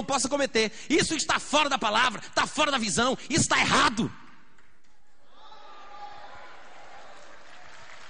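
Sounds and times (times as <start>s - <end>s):
speech: 0.0s - 4.2s
audience applause: 5.7s - 8.0s.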